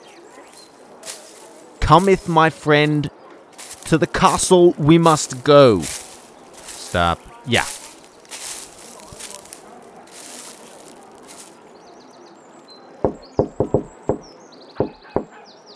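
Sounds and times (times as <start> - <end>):
birds chirping: 0.0 - 15.7
speech: 1.9 - 3.2, 3.9 - 6.0, 6.9 - 7.8
knocking on a door: 13.0 - 15.3.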